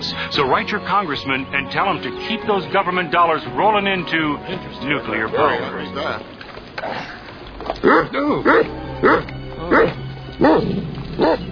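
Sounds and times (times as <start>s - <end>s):
speech: 0.3s - 7.1s, 7.8s - 11.5s
guard dogs barking: 7.8s - 11.5s.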